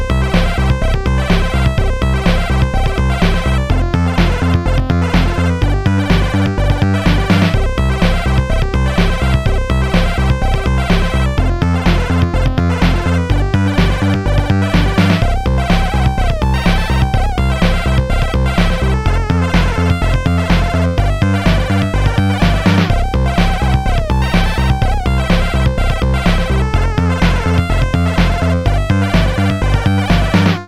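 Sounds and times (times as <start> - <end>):
chiptune death jingle: 0.1 - 30.6.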